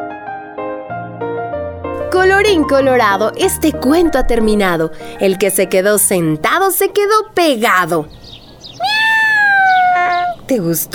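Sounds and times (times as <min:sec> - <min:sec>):
speech: 0:02.1 - 0:08.2, 0:10.5 - 0:10.9
cat meowing: 0:08.7 - 0:10.5.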